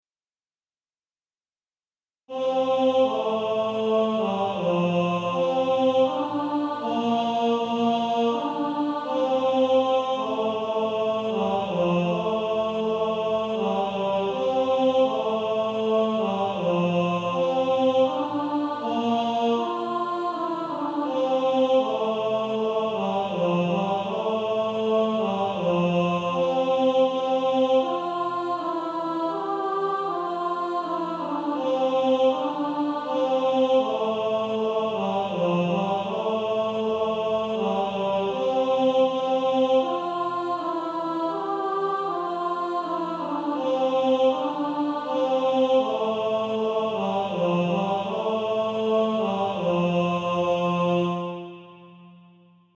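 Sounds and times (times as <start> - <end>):
male choir tenor 1 voice singing: 2.3 - 52.0.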